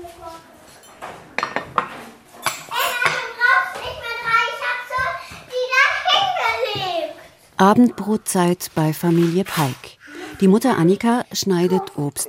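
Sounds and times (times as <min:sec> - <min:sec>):
dishes and cutlery clinking as the table is set for supper: 0:00.6 - 0:04.0
children chattering: 0:02.4 - 0:07.2, 0:09.9 - 0:12.2
speech: 0:07.6 - 0:12.2.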